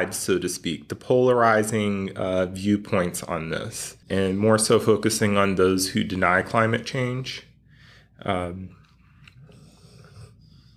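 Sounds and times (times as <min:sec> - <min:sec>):
speech: 0:00.0 - 0:07.5, 0:08.2 - 0:08.8
dog raspy breathing: 0:07.5 - 0:10.7
dog snoring: 0:09.4 - 0:10.7.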